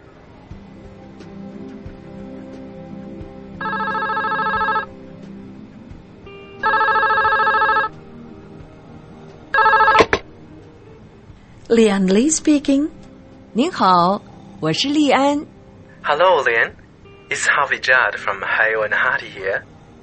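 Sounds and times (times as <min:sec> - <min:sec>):
telephone ringing in electronic bursts: 0:03.6 - 0:04.9, 0:06.5 - 0:08.0, 0:09.5 - 0:10.2
speech: 0:11.7 - 0:13.0, 0:13.6 - 0:19.7.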